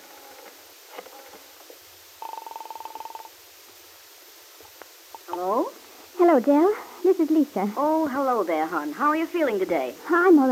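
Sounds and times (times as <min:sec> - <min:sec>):
telephone dialing tone pulses in a telephone booth: 0:02.2 - 0:03.4
speech: 0:06.3 - 0:10.5.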